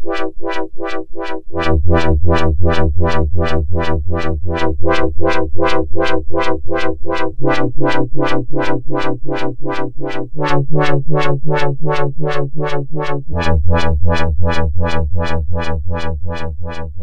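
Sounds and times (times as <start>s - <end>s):
rolling wah factory preset on a Roland Juno-106 synthesizer: 0.1s - 17.0s.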